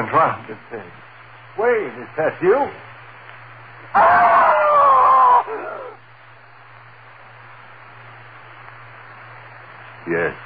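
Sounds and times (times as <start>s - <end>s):
speech: 0.0s - 2.9s, 3.9s - 4.6s, 10.1s - 10.4s
low steady hum: 0.0s - 10.4s
man screaming loudly: 4.0s - 6.0s.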